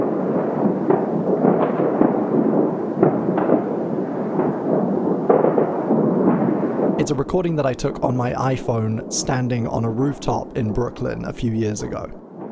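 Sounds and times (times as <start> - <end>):
fireworks crackling and booming: 0.0 - 12.4
steady roar: 7.0 - 12.4
speech: 7.1 - 12.2.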